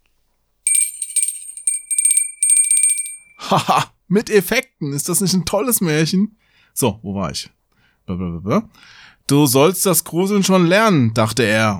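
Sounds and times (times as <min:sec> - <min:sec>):
small hand bell ringing: 0:00.7 - 0:03.5
speech: 0:03.5 - 0:11.7.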